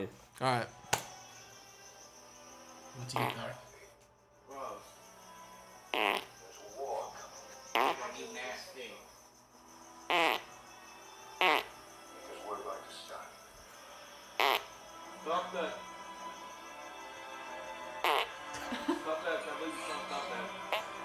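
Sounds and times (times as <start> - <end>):
speech: 0.0 - 0.8, 3.0 - 3.7, 15.2 - 15.9
steady high buzz: 0.4 - 21.0
loud sharp farts: 6.0 - 6.3, 10.1 - 10.5
laughter: 18.4 - 21.0.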